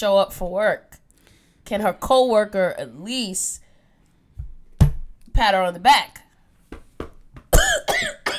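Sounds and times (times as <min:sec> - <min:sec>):
speech: 0:00.0 - 0:01.0, 0:01.7 - 0:03.6, 0:05.4 - 0:06.2
woman coughing: 0:07.5 - 0:08.3.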